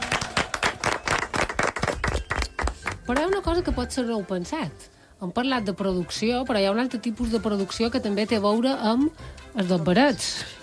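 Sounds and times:
crowd applauding: 0.0 - 3.4
speech: 3.1 - 10.6.

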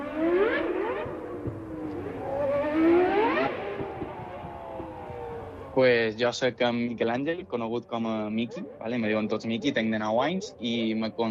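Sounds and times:
car engine revving heard from inside the cabin: 0.0 - 5.9
speech: 5.8 - 11.2.

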